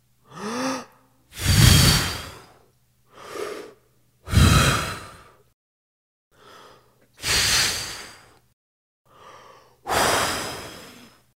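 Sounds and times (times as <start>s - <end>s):
person blowing out candle: 0.3s - 2.6s, 3.2s - 5.4s, 7.2s - 8.4s, 9.9s - 11.2s.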